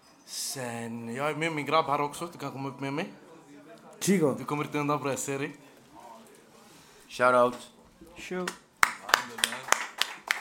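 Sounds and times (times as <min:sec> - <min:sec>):
speech: 0:00.5 - 0:03.2, 0:04.0 - 0:05.7, 0:07.1 - 0:08.6
sharp hand claps: 0:08.4 - 0:10.3.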